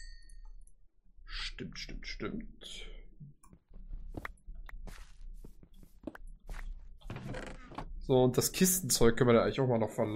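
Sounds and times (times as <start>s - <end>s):
glass clinking as it is picked up: 0.0s - 0.5s
speech: 1.6s - 3.4s, 8.1s - 10.1s.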